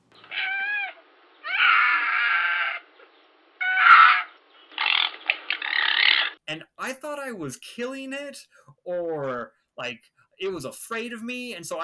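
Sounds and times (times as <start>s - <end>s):
fox screaming: 0.2s - 3.0s, 3.6s - 6.4s
speech: 6.5s - 11.8s.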